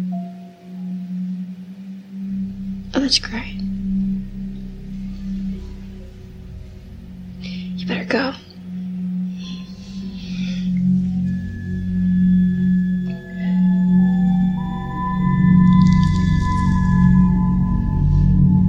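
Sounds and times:
dark ominous film score with low drone and high tones: 0.0 - 18.6
speech: 3.0 - 3.7, 8.1 - 8.5.

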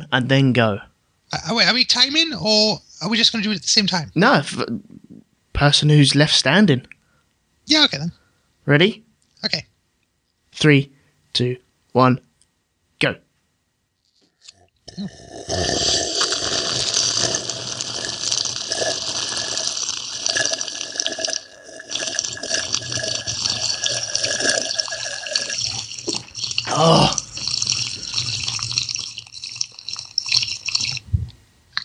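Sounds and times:
speech: 0.1 - 5.0, 5.6 - 6.9, 7.7 - 9.7, 10.6 - 12.3, 13.0 - 13.2, 14.9 - 16.1, 26.8 - 27.2
gulping: 14.1 - 31.1
loud slurping of water during a slurping contest: 14.1 - 31.1.

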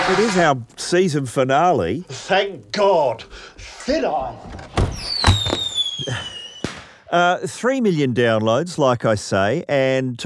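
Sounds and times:
speech: 0.1 - 6.3, 7.1 - 10.2
fireworks bangs and crackles: 4.9 - 7.0
high whistling tone of fireworks sliding downward: 5.0 - 6.9.

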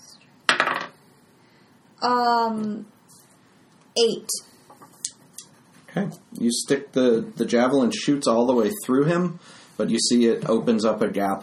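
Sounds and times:
dice rolled for damage in a game across a hard tabletop: 0.5 - 1.0
speech: 2.0 - 3.0, 4.0 - 4.5, 6.0 - 11.4.

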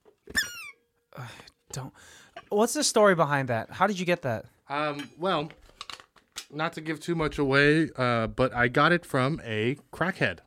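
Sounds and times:
vintage object squeaking: 0.3 - 0.8
speech: 1.2 - 5.6, 6.5 - 10.4.

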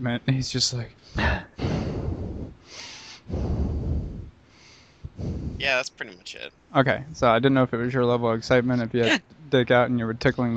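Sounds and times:
speech: 0.0 - 1.7, 5.6 - 10.5
man breathing heavily against a microphone: 1.0 - 5.6.

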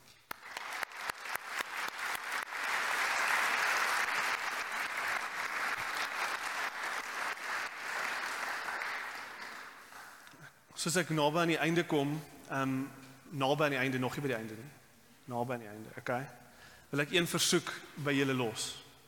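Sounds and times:
large audience applauding: 0.0 - 10.2
speech: 10.8 - 18.8.

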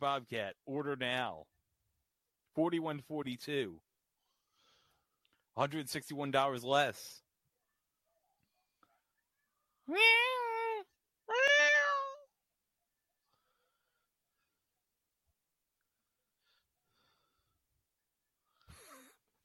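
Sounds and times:
speech: 0.0 - 1.6, 2.6 - 3.9, 5.6 - 7.2, 9.9 - 10.5
cat meowing: 9.9 - 12.3.

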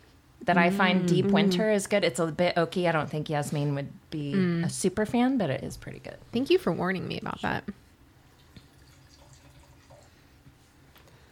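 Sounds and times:
speech: 0.5 - 7.8
wine being poured into a glass: 8.2 - 10.2
soft drips: 8.2 - 10.4.

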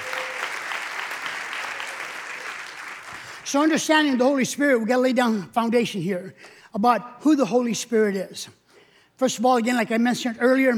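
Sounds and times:
congregation applauding: 0.0 - 3.5
speech: 3.5 - 8.6, 9.2 - 10.7.

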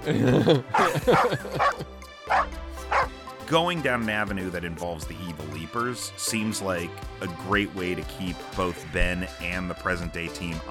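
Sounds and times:
laughter: 0.0 - 1.9
speech: 0.0 - 1.9, 3.5 - 10.7
dog barking with yipping whiny barks: 0.7 - 3.1.

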